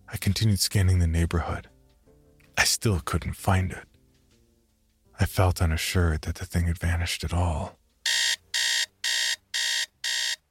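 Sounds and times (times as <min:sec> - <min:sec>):
speech: 0:00.3 - 0:01.7, 0:02.8 - 0:03.9, 0:05.2 - 0:07.8
alarm clock beeping in electronic bursts: 0:08.1 - 0:10.4.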